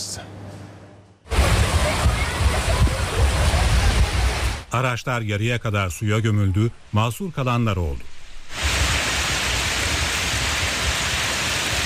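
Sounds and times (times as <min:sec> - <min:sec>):
heavy rain with hail in a midday storm over flooded city streets in Edirne: 0:01.3 - 0:04.7, 0:08.5 - 0:11.8
speech: 0:04.7 - 0:08.1.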